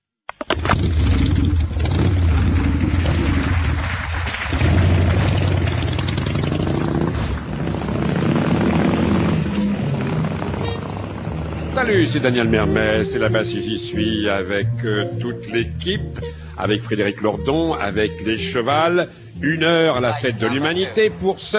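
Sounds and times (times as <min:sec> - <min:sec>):
engine idling and revving: 0:00.6 - 0:13.1
speech: 0:11.9 - 0:21.5.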